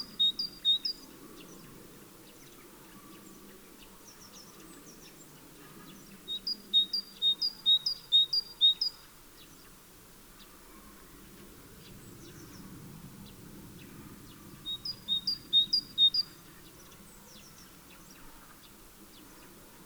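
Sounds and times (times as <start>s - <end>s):
great tit Parus major singing two-note phrases: 0.0s - 1.1s, 6.3s - 9.0s, 14.2s - 16.9s.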